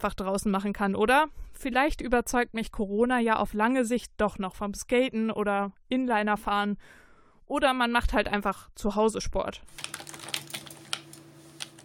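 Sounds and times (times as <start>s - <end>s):
speech: 0.0s - 10.0s
computer keyboard typing: 9.7s - 11.8s
steady low electrical hum: 9.7s - 11.8s.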